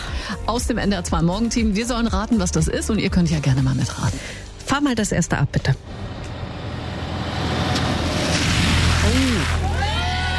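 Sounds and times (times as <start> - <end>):
speech: 0.3 - 6.1
low truck engine rumble: 5.7 - 9.8
water rushing and sloshing as a truck drives through a deep roadside puddle: 5.9 - 9.6.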